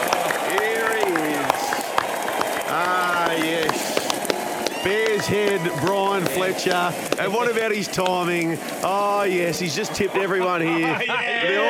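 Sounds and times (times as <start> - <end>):
crowd clapping: 0.0 - 11.0
speech: 4.8 - 11.6
laughter: 9.0 - 11.6.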